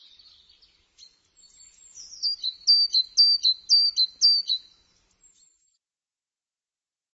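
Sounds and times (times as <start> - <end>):
bird chirping: 0.0 - 5.6.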